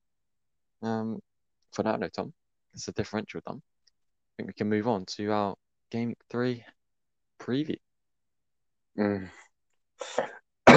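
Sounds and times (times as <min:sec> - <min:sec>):
speech: 0:00.8 - 0:03.7, 0:04.4 - 0:06.8, 0:07.4 - 0:07.8, 0:09.0 - 0:09.4, 0:10.0 - 0:10.4
person coughing: 0:10.0 - 0:10.7.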